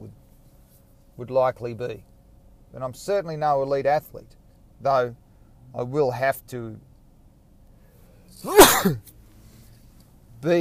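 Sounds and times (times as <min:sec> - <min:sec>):
speech: 0:01.2 - 0:02.1, 0:02.7 - 0:06.9, 0:08.3 - 0:09.1
sneeze: 0:08.4 - 0:09.1.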